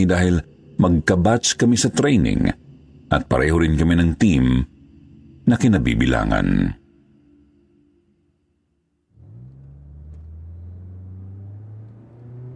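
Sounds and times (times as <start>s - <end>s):
speech: 0.0s - 4.7s, 5.5s - 6.8s
car engine idling and revving as the vehicle drives along: 9.1s - 12.5s.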